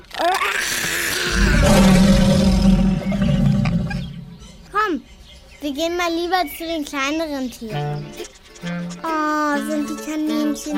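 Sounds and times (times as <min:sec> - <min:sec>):
big lion roaring: 0:01.0 - 0:04.6
gravelly low lion growl: 0:01.0 - 0:04.6
speech: 0:05.7 - 0:10.7.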